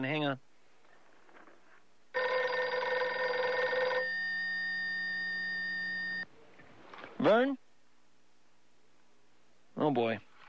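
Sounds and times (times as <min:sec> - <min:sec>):
speech: 0:00.0 - 0:00.5, 0:07.2 - 0:07.6, 0:09.9 - 0:10.3
telephone ringing with a long electronic tone: 0:02.1 - 0:06.2.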